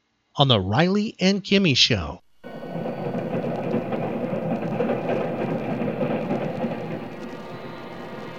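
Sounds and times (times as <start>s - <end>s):
speech: 0.4s - 2.2s
rhythmic clacks of train wheels: 2.4s - 8.3s
train rumbling along the tracks: 2.4s - 8.3s.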